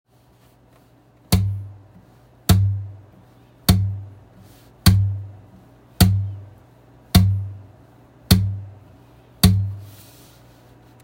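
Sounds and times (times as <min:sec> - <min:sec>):
percussive string slap on a guitar: 0:01.2 - 0:03.0, 0:03.6 - 0:04.2, 0:04.8 - 0:05.4, 0:07.1 - 0:07.6, 0:08.3 - 0:08.7.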